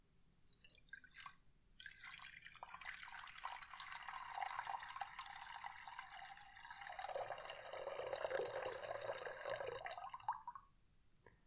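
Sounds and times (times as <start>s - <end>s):
water poured into a metal singing bowl: 0.4s - 10.6s.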